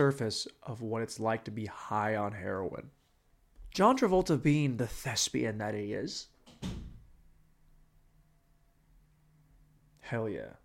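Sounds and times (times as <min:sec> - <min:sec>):
speech: 0:00.0 - 0:03.0, 0:03.8 - 0:06.9, 0:10.1 - 0:10.6
faint low hum: 0:00.0 - 0:10.6
door closing with a low thud: 0:06.4 - 0:07.2.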